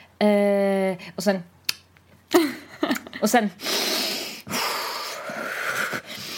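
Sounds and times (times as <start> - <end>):
speech: 0.2 - 1.6, 3.2 - 3.8
person imitating dramatic sharp breath intakes: 3.6 - 6.3.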